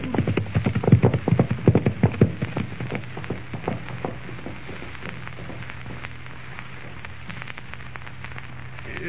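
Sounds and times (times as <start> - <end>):
horse hooves clip-clopping as riders set off: 0.0 - 6.2.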